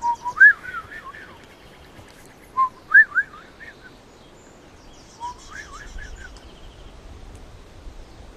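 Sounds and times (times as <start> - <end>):
person whistling an imitation of Swainson's thrush song: 0.0 - 1.4, 2.6 - 3.9, 5.2 - 6.4.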